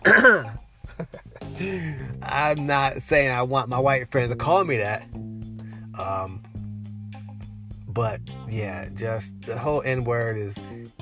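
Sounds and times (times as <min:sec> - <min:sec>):
rough gravelly throat clearing: 0:00.0 - 0:00.6
speech: 0:00.3 - 0:05.2, 0:06.0 - 0:06.5, 0:08.0 - 0:10.9
breaths: 0:01.5 - 0:02.2, 0:05.5 - 0:06.0.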